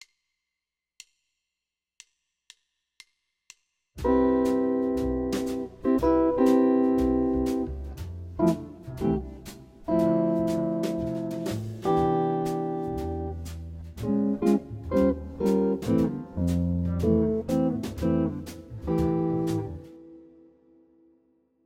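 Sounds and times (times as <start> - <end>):
jazz guitar playing a chromatic progression: 4.0 - 20.6.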